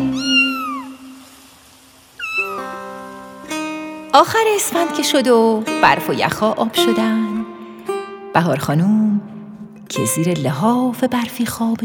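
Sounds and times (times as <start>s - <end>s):
cat meowing: 0.0s - 1.2s, 2.2s - 2.7s
speech: 4.2s - 7.4s, 8.4s - 9.2s, 9.9s - 11.8s.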